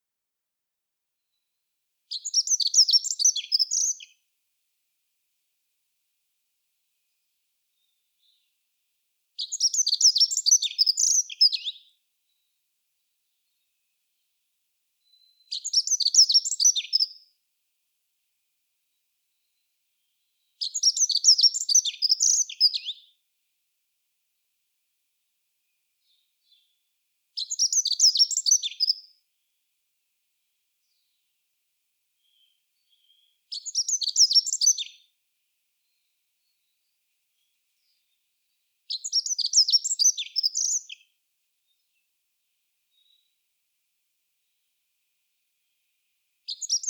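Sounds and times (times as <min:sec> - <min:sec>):
accenteur mouchet singing: 0:02.1 - 0:04.2, 0:09.4 - 0:12.6, 0:15.0 - 0:17.2, 0:19.3 - 0:23.1, 0:27.4 - 0:29.1, 0:32.2 - 0:35.0, 0:38.9 - 0:41.1, 0:42.9 - 0:43.4, 0:46.5 - 0:46.8.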